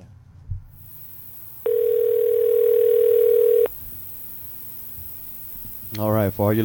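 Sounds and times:
telephone dial tone: 1.7s - 3.7s
speech: 6.0s - 6.6s.

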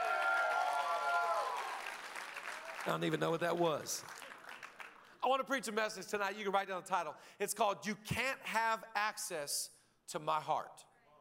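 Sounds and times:
audience clapping during an evening sermon: 0.0s - 5.3s
speech: 2.8s - 4.3s, 5.2s - 10.9s.

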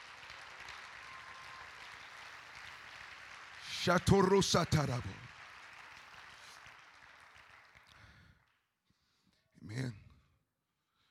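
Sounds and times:
audience clapping hands: 0.0s - 8.7s
speech: 3.8s - 5.2s.

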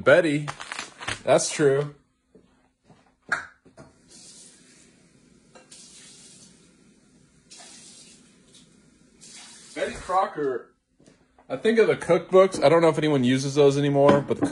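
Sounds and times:
speech: 0.0s - 2.0s, 10.1s - 10.7s, 11.5s - 14.4s
water running from a tap: 3.9s - 10.3s.

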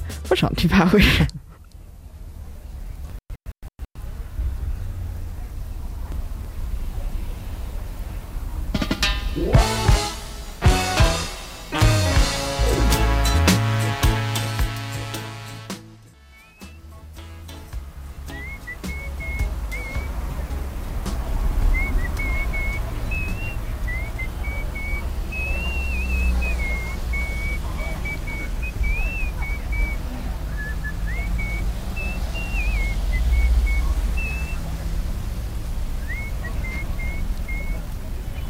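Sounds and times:
street traffic rumbling: 0.0s - 3.2s, 4.0s - 38.4s
speech: 0.1s - 1.4s
light rain: 4.0s - 8.8s, 19.2s - 38.4s
brief burst of music: 8.8s - 24.2s
person whistling a wandering tune: 16.2s - 16.8s, 18.3s - 20.2s, 21.7s - 34.6s, 36.1s - 37.8s.

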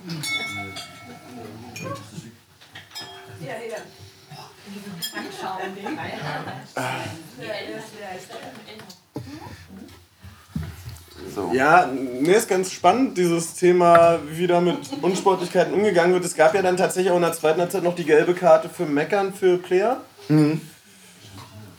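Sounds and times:
glasses clinking together in a toast: 0.0s - 4.1s, 5.0s - 5.5s, 11.2s - 17.2s
people laughing: 4.3s - 9.8s, 11.2s - 20.8s
speech: 5.2s - 6.9s, 11.5s - 20.7s.

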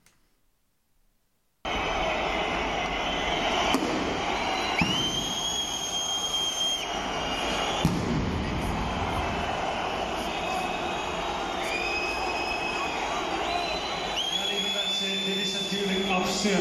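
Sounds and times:
stadium crowd roaring: 1.6s - 16.5s
rising whistle-like tones: 2.8s - 16.5s
sharp firework bangs: 3.6s - 5.4s, 7.5s - 9.9s.

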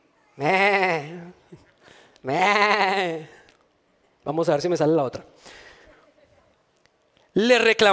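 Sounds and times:
speech: 0.4s - 0.8s, 2.2s - 3.3s, 4.3s - 5.6s, 7.4s - 7.9s
person imitating sheep bleating: 0.4s - 1.4s, 2.3s - 3.3s
faint breath: 1.7s - 2.2s, 5.3s - 6.2s.

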